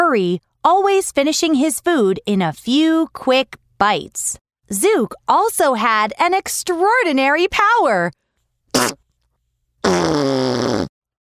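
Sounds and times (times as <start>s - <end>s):
speech: 0.1s - 8.2s, 8.8s - 9.0s
farts: 8.7s - 9.0s, 9.8s - 10.9s.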